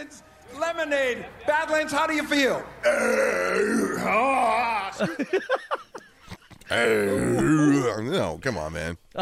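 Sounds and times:
speech: 0.0 - 6.0, 6.7 - 9.2
croaky belch after chugging lemonade: 2.9 - 4.5, 6.7 - 8.0
person laughing: 4.6 - 6.6.

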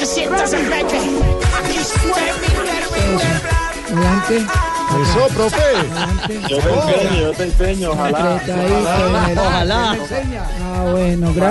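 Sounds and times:
speech: 0.0 - 11.5
upbeat dance music: 0.0 - 11.5
laughter: 5.0 - 10.3.

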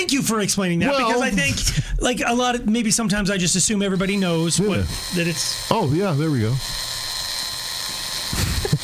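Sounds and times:
speech: 0.0 - 7.0
battery-operated vibrator buzzing: 2.9 - 8.8.

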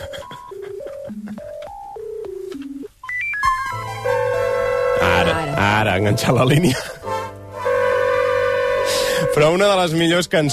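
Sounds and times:
telephone-style electronic ringing tone beeps: 0.0 - 3.8
song with sustained synth notes: 3.1 - 9.7
speech: 5.6 - 7.0, 9.4 - 10.5.

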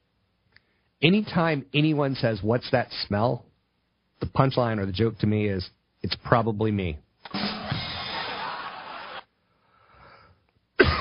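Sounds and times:
speech: 1.0 - 3.5, 4.2 - 7.0
faint breathy sound: 9.4 - 10.5
loud harsh coughing: 10.8 - 10.9.

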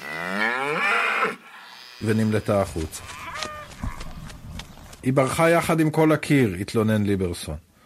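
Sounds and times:
cow mooing: 0.0 - 2.4
speech: 2.0 - 3.2, 5.0 - 7.7.

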